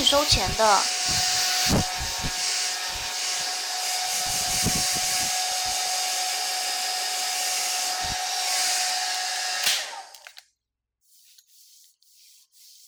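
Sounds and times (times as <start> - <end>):
hair dryer blowing, drying a boy's short hair: 0.0 - 10.3
speech: 0.1 - 2.4.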